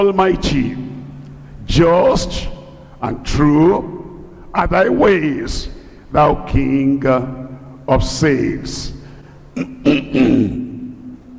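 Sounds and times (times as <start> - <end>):
speech: 0.0 - 0.9, 1.7 - 3.9, 4.5 - 9.0, 9.6 - 10.6
person coughing: 9.5 - 10.8.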